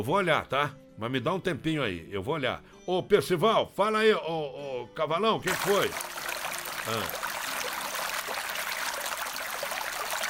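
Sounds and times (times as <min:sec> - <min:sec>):
speech: 0:00.0 - 0:06.2, 0:06.8 - 0:07.2
water pouring: 0:05.5 - 0:10.2.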